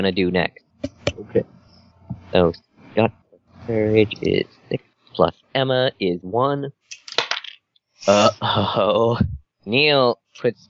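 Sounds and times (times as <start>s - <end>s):
speech: 0.0s - 1.6s, 2.3s - 6.8s, 8.0s - 10.6s
dice being rolled: 6.9s - 7.6s.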